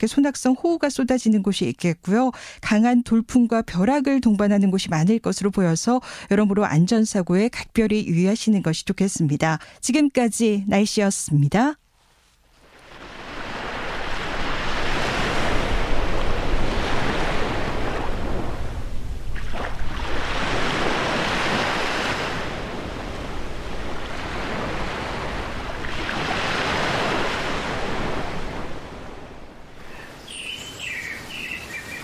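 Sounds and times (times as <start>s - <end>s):
speech: 0.0s - 11.8s
ocean surf: 12.6s - 32.0s.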